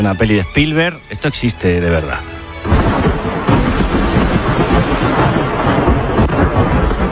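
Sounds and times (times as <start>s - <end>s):
speech: 0.0s - 3.5s
thunder from a lightning strike in a storm over southern Castilla y León: 2.6s - 7.1s.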